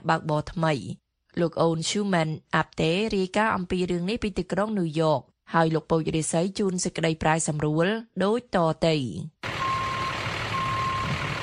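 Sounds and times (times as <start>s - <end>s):
speech: 0.0s - 9.4s
container truck engine rumble: 9.4s - 11.4s
container truck reversing beeps on a quiet street in the Bronx, New York: 9.4s - 11.4s.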